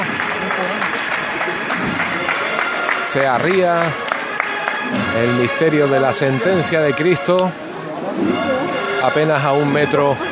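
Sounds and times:
large outdoor crowd applauding: 0.0s - 10.3s
speech: 3.1s - 4.0s, 4.9s - 7.6s, 8.2s - 10.3s.

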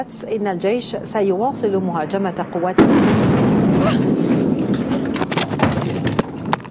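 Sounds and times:
reporter speaking in a live television report: 0.0s - 3.0s
dense roaring noise after a bomb blast: 0.0s - 6.7s
bomb explosion during an Israeli air strike on Damascus, Syria: 1.6s - 6.5s.

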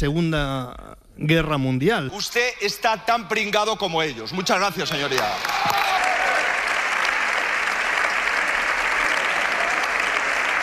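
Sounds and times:
speech: 0.0s - 6.0s
parliament deputies applauding: 4.9s - 10.6s.

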